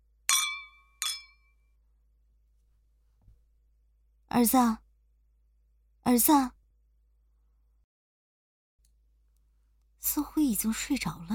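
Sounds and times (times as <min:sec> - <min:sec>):
glasses clinking in a toast: 0:00.3 - 0:01.5
speech: 0:04.3 - 0:04.8, 0:06.0 - 0:06.6, 0:10.1 - 0:11.3.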